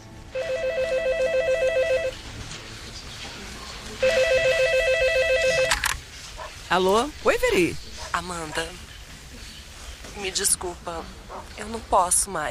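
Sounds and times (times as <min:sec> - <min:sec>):
telephone ringing with a warbling electronic trill: 0:00.3 - 0:02.2, 0:04.0 - 0:05.8
speech: 0:06.7 - 0:08.9, 0:10.2 - 0:12.5.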